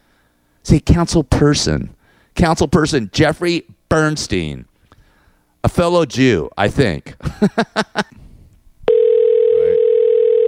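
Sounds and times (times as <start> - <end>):
speech: 0.7 - 4.7, 5.6 - 8.1
outgoing telephone call ringback tone over the phone line: 8.9 - 10.4.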